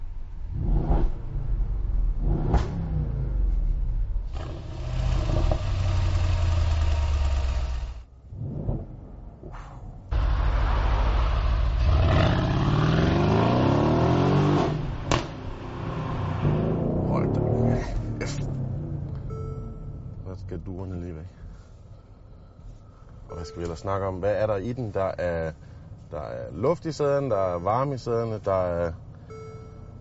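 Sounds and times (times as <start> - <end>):
powerful 5.5-litre V8 car engine revving and accelerating: 0.5 - 3.6, 4.3 - 8.1, 10.1 - 20.5
speech: 23.5 - 29.1.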